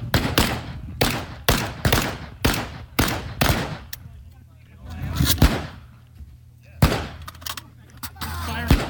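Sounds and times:
gunfire at a shooting range during a timed drill: 0.1 - 3.9, 5.3 - 5.8, 6.8 - 7.3, 8.6 - 8.8.

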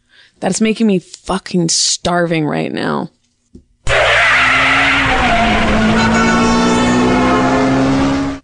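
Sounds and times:
speech: 0.3 - 3.2
car engine roaring: 3.9 - 8.4
car tires squealing while driving off: 3.9 - 8.4.

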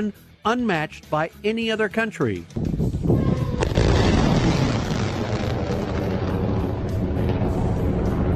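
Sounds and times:
speech: 0.0 - 2.7
hypersonic interceptor missile test launch roar at an anti-ballistic missile range in Kazakhstan: 3.2 - 8.3.

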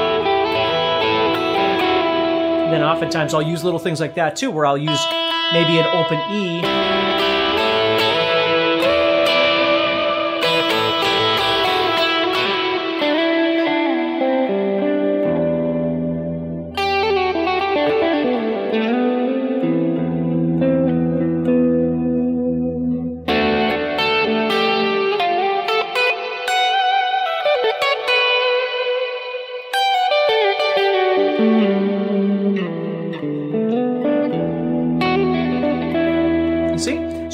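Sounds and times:
electric guitar with light gritty distortion and reverb playing chords and melodic lines: 0.0 - 37.3
speech: 2.7 - 7.4.

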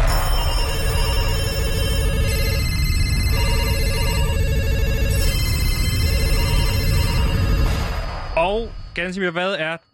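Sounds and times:
old-fashioned telephone bell ringing with metallic jangle: 0.1 - 7.8
speech: 9.0 - 9.9.

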